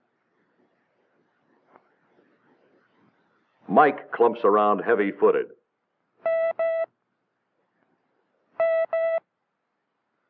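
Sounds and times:
speech: 3.8s - 5.6s
Morse code beeps: 6.2s - 6.9s, 8.6s - 9.2s.

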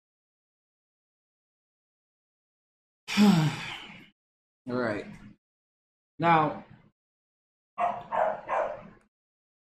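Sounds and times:
speech: 3.2s - 3.6s, 4.7s - 5.3s, 6.2s - 6.7s
dog barking: 7.8s - 9.0s.

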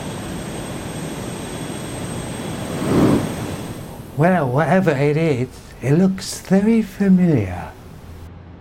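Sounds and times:
rushing roar: 2.4s - 4.4s
speech: 4.2s - 7.8s.

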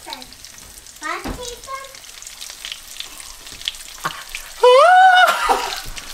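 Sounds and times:
food frying in a pan: 0.0s - 6.1s
loud high-pitched vocal cry: 4.6s - 5.8s.

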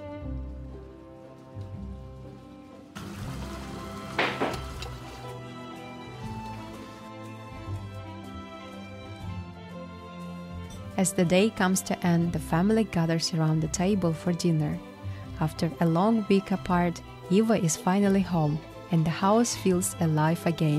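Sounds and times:
soft sustained music: 0.0s - 20.7s
river water sloshing and trickling during hand-washing of laundry: 2.3s - 7.3s
water splash: 3.0s - 5.4s
speech: 11.0s - 20.7s.

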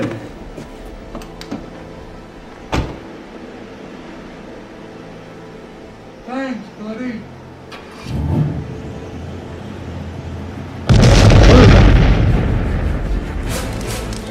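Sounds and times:
car engine turning over and rumbling: 7.6s - 14.2s
loud car explosion: 10.9s - 13.5s
debris crackling: 10.9s - 14.2s.

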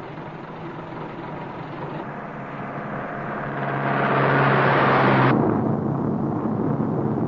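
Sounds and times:
bus rolling road noise on a desert road: 0.0s - 7.2s
commuter bus engine drone on a desert road: 0.0s - 7.2s.

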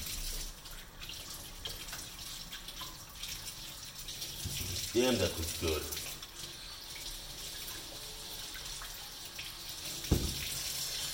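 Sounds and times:
water running from a tap washing carrots: 0.0s - 11.1s
speech: 4.9s - 6.0s
knock or splash: 10.1s - 10.5s.

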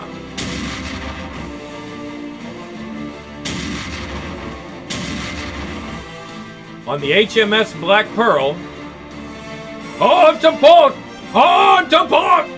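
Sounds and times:
ship's starboard cannons firing: 0.3s - 1.9s, 3.4s - 6.3s
speech: 6.9s - 8.7s, 10.0s - 12.5s.

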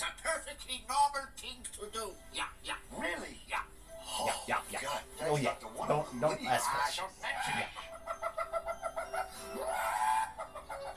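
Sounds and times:
speech: 0.7s - 3.4s, 4.2s - 7.7s
chicken clucking: 6.6s - 10.9s
rooster crowing: 9.6s - 10.9s.

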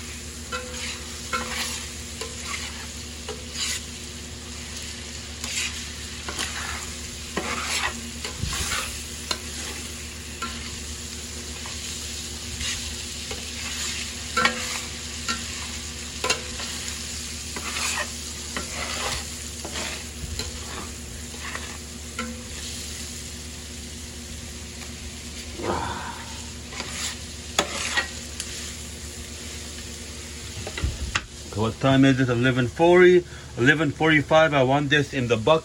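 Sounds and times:
food with garlic sizzling in a frying pan: 0.0s - 34.6s
scraping stirring strokes in a frying pan: 0.5s - 10.9s, 11.5s - 22.8s, 26.4s - 28.8s
speech: 31.7s - 35.6s.

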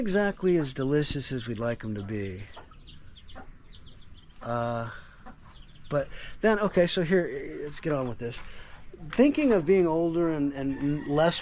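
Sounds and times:
speech: 0.0s - 2.6s, 4.4s - 5.1s, 5.9s - 11.4s
chickens clucking: 0.0s - 11.4s
faint chirping birds: 0.0s - 11.4s.

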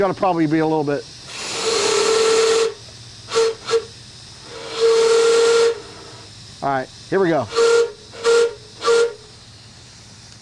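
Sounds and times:
speech: 0.0s - 1.1s, 6.6s - 7.6s
steam locomotive whistle blowing: 1.6s - 6.2s, 7.5s - 9.3s.

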